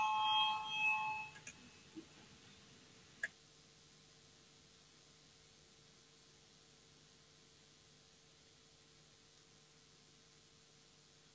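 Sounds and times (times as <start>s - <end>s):
electronic voting bell ringing in the Latvian parliament: 0.0s - 1.5s.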